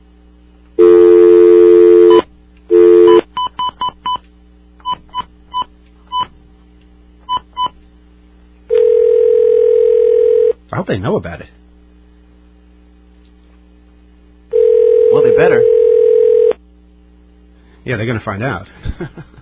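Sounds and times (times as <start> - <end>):
telephone dial tone: 0.8 - 3.2, 8.7 - 10.6, 14.5 - 16.6
speech: 10.9 - 11.6, 17.8 - 19.3.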